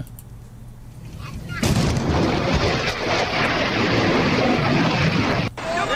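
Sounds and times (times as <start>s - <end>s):
sonic boom from an F-16 jet breaking the sound barrier: 1.6s - 5.5s.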